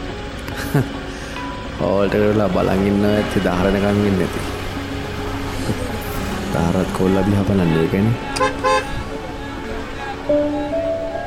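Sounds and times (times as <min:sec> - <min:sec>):
car driving off: 0:00.0 - 0:11.2
speech: 0:00.5 - 0:01.0, 0:01.8 - 0:04.6, 0:05.7 - 0:08.9, 0:10.3 - 0:10.8
low rumble: 0:02.3 - 0:10.2
car horn toot as a car drives off: 0:08.2 - 0:09.5.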